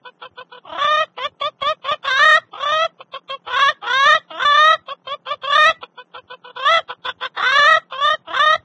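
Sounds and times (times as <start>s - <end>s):
chicken: 0.0s - 8.6s.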